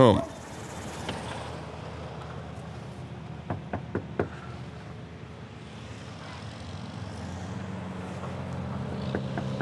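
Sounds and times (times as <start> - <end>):
steady outdoor rumble: 0.1 - 9.6
sharp knocks on a house door: 3.5 - 4.3.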